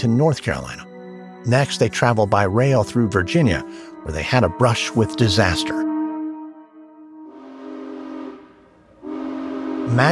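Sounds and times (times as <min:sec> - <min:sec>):
speech: 0:00.0 - 0:05.9, 0:09.9 - 0:10.1
train whistle blowing a long steady harmonic tone: 0:07.2 - 0:10.1.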